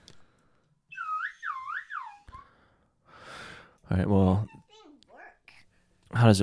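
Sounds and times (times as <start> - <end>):
slide whistle gliding note: 0.9 - 2.5
speech: 3.9 - 4.6, 6.2 - 6.4.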